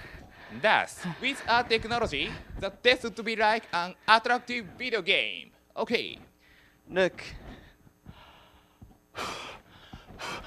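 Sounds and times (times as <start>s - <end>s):
soft breathing into a breath-controlled device: 0.0s - 4.9s, 6.3s - 10.4s
speech: 0.5s - 6.3s, 6.9s - 7.5s.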